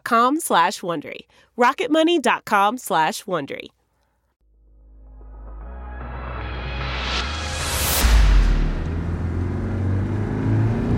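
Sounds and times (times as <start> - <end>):
speech: 0.1 - 3.8
big rig truck loaded with logs accelerating: 5.5 - 10.9.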